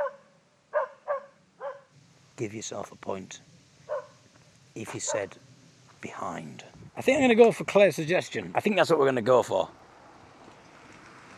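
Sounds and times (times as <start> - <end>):
dog barking: 0.0 - 1.9, 3.9 - 4.2, 4.9 - 5.4
speech: 2.4 - 3.5, 4.8 - 9.8.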